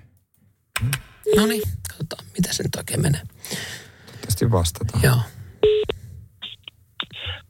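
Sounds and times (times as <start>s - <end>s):
speech: 0.8s - 3.8s, 4.4s - 5.8s
DTMF keypad tone of telephone number being dialed: 1.3s - 1.6s.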